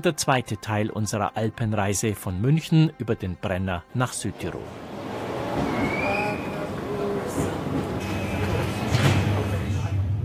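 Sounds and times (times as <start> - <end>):
speech: 0.0 - 4.9
indistinct chatter of passengers: 4.2 - 10.2
regional commuter train rumbling from inside a carriage: 4.2 - 10.2
train wheel and rail noise: 4.3 - 10.2
faint squealing tones: 4.6 - 9.0.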